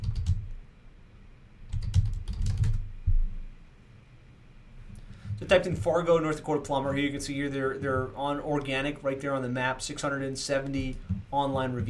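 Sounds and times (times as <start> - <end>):
typing on a computer keyboard: 0.0 - 0.5, 1.7 - 2.9
speech: 5.4 - 11.8.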